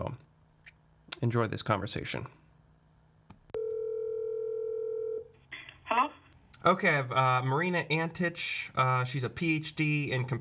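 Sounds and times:
speech: 1.2 - 2.4, 6.6 - 10.3
telephone dial tone while placing a call: 3.5 - 5.3.

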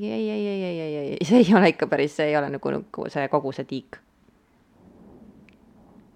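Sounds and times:
speech: 0.0 - 4.1
distant thunder rumbling: 4.7 - 6.1.

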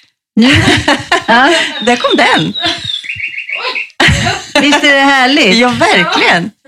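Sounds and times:
speech: 0.4 - 2.8, 4.1 - 6.6
laughter: 0.4 - 6.4
birds chirping: 0.5 - 6.4
busy bird twittering: 1.6 - 4.0.

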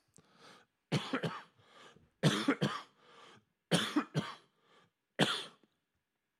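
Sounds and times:
person coughing in harsh hacking bursts: 0.9 - 1.5, 2.2 - 3.0, 3.7 - 4.5, 5.2 - 5.6.

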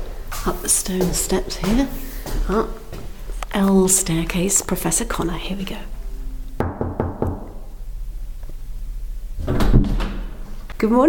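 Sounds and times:
speech: 0.4 - 2.9, 3.5 - 6.0, 10.8 - 11.0
quick knocks on wood: 6.6 - 7.5.

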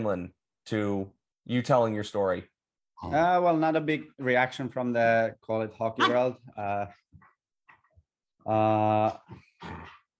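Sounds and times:
speech: 0.0 - 7.3, 8.4 - 10.0
dog yelping: 6.0 - 6.2.

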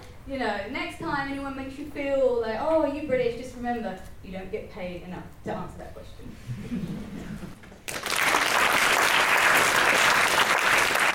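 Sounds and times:
speech: 0.3 - 7.3
crowd applause: 7.8 - 11.1.

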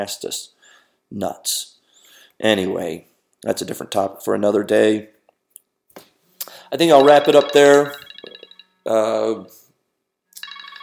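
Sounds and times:
speech: 0.0 - 1.8, 2.4 - 5.2, 6.7 - 8.0, 8.8 - 9.6
phone ringing with pulsing electronic tones: 6.8 - 9.2, 10.4 - 10.8.

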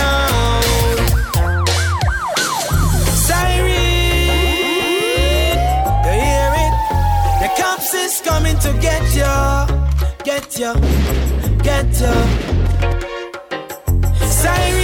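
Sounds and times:
pounding bass-heavy musical beat: 0.0 - 13.1, 13.9 - 14.8
police siren wailing: 1.1 - 8.7.

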